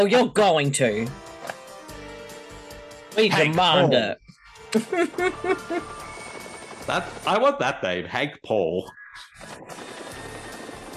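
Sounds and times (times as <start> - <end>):
speech: 0.0 - 1.3, 3.2 - 6.0, 6.9 - 10.0
laughter: 3.2 - 4.1, 4.8 - 6.0
helicopter in flight: 5.1 - 7.4, 9.4 - 10.9.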